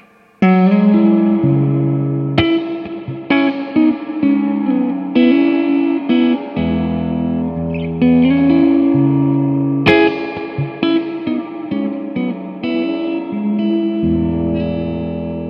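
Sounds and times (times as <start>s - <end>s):
overdrive distortion effect on gritty saturated chords and notes: 0.0s - 15.4s.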